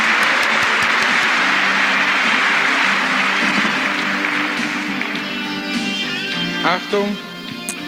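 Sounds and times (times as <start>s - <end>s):
studio audience applauding: 0.0s - 6.0s
speech: 6.7s - 7.3s.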